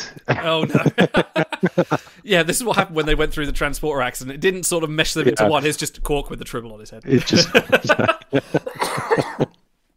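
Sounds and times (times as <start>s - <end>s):
laughter: 0.0s - 2.8s, 7.1s - 9.5s
speech: 0.2s - 9.5s
person coughing with raspy bursts: 8.6s - 9.6s.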